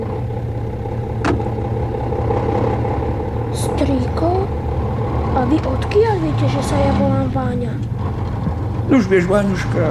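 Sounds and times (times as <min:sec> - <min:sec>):
car engine idling with a low continuous rumble: 0:00.0 - 0:09.9
brief clunk or click: 0:01.2 - 0:01.6
speech: 0:03.8 - 0:04.6, 0:05.4 - 0:08.0, 0:08.9 - 0:09.9.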